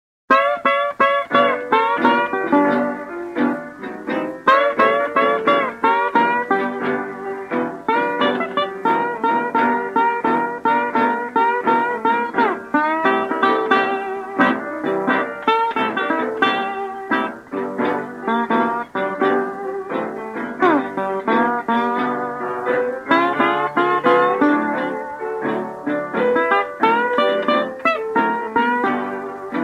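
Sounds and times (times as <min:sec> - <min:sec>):
jazz and rhythm and blues slide guitar: 0:00.3 - 0:29.6.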